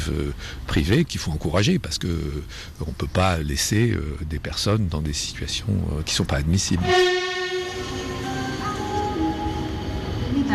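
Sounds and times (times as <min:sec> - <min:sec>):
speech: 0:00.0 - 0:07.4
train rumbling at a railway station: 0:00.0 - 0:10.5
steady horn-like tones of a train at a railway station: 0:06.8 - 0:10.5.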